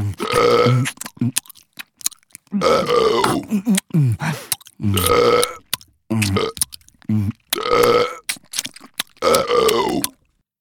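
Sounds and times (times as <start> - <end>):
loud burps with wavering pitch: 0.0 - 0.9, 2.5 - 4.0, 4.8 - 8.3, 9.2 - 10.2
faint wet mouth noises: 0.0 - 10.4
speech: 0.4 - 1.5, 2.5 - 5.6.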